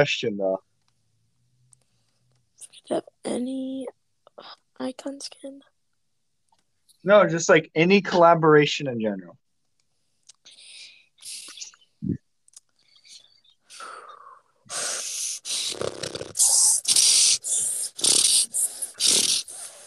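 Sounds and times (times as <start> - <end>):
speech: 0.0 - 0.7, 2.9 - 5.7, 7.0 - 9.4
soft breathy sounds: 10.0 - 19.8
person snorting imitating a horse: 14.7 - 19.8.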